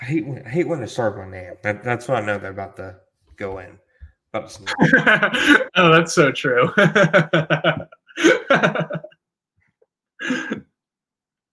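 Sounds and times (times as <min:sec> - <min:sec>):
speech: 0:00.1 - 0:09.1, 0:10.2 - 0:10.7
laughter: 0:04.6 - 0:05.8, 0:06.6 - 0:09.1
person sneezing: 0:10.2 - 0:10.6.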